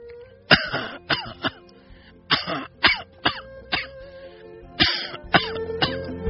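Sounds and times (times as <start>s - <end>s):
elderly woman clearing her throat: 0.5s - 1.6s, 2.3s - 3.9s, 4.8s - 6.1s
elderly woman lying in bed coughing hoarsely: 0.5s - 1.6s, 2.3s - 3.9s, 4.8s - 6.1s.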